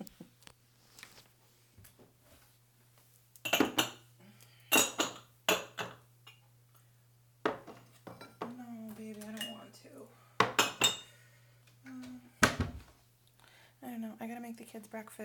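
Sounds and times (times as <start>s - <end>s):
plates and silverware clinking while being washed up: 3.5s - 4.0s, 4.7s - 6.4s, 10.4s - 11.2s
speech: 14.1s - 15.2s.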